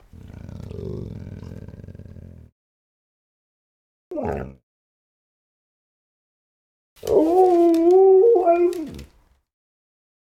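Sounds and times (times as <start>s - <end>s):
dog howling: 7.0s - 9.1s.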